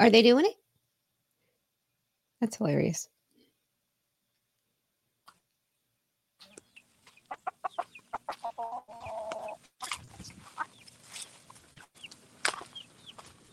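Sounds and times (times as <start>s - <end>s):
speech: 0.0s - 0.6s, 2.4s - 3.1s
flock of chickens clucking: 6.4s - 13.5s
rooster squawking among a flock of chickens: 7.3s - 9.6s.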